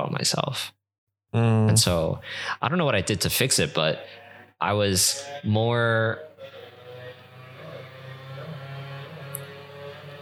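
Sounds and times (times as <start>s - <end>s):
speech: 0.0s - 6.6s
loud motorcycle engine drone: 5.0s - 10.2s.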